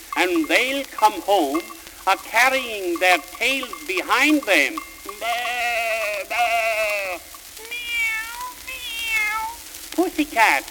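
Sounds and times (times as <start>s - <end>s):
speech: 0.2s - 5.6s, 10.0s - 10.6s
cat meowing: 6.6s - 9.7s.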